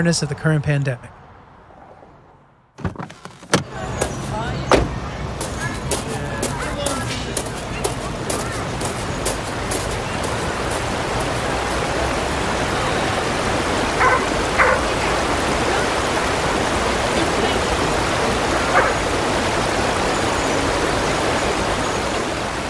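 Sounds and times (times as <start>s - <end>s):
speech: 0.0s - 1.2s
rushing river water: 3.3s - 22.6s
dog barks: 13.8s - 16.1s, 18.4s - 19.7s.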